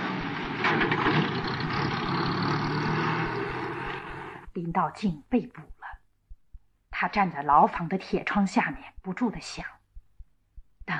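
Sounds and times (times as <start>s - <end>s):
small car engine driving away: 0.0s - 4.5s
speech: 4.7s - 5.8s, 7.0s - 9.8s.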